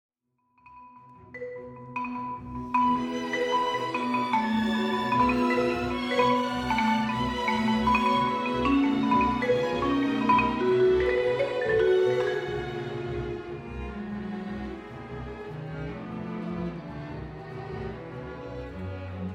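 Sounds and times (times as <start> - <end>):
marimba piece: 0.6 - 14.8.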